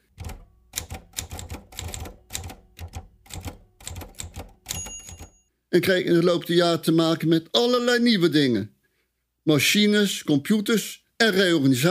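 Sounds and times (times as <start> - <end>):
mechanical typewriter keystrokes: 0.1 - 5.4
speech: 5.7 - 8.8, 9.5 - 11.8.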